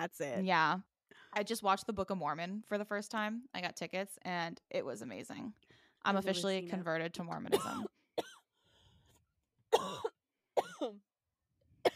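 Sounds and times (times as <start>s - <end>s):
speech: 0.0s - 8.3s, 9.8s - 10.1s, 10.8s - 11.1s
harsh raspy coughing: 7.5s - 8.5s, 9.7s - 11.0s.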